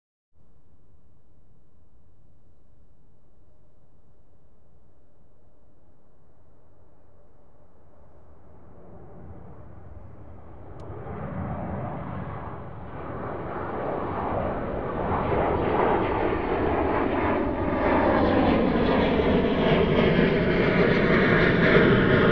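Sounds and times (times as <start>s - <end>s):
jet aircraft taking off: 7.9s - 22.3s.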